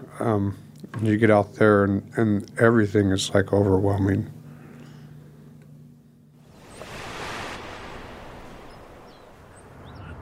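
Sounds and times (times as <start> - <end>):
speech: 0.2 - 4.4
small waves lapping near the shore: 6.4 - 10.2.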